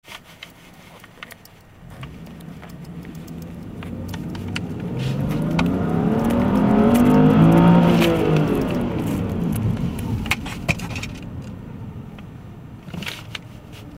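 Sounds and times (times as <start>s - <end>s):
engine at 7000rpm heard from inside: 1.7s - 11.5s.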